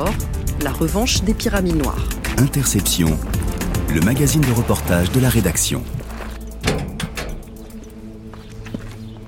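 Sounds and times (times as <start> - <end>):
low windy outdoor background: 0.0 - 9.2
speech: 0.1 - 6.0
door banging shut in the wind: 6.6 - 7.6.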